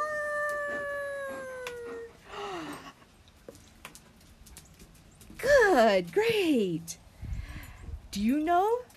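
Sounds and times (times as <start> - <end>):
person imitating a wolf howl: 0.0 - 2.2
speech: 5.8 - 7.0, 8.2 - 8.9.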